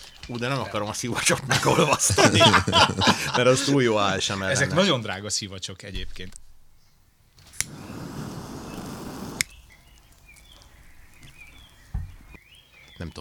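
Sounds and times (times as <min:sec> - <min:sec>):
speech: 0:00.3 - 0:06.4
laughter: 0:01.0 - 0:05.0
soft lighter flame hissing: 0:07.3 - 0:12.4
lit cigarette ember crackling: 0:07.3 - 0:13.0
lighter strike clicking: 0:07.6 - 0:10.5.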